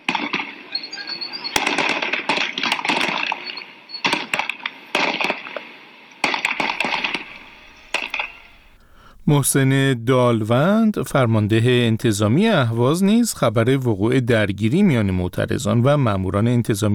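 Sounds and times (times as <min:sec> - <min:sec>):
gunshots: 0:00.0 - 0:08.8
noisy outdoor noise: 0:00.0 - 0:16.9
speech: 0:09.3 - 0:16.9.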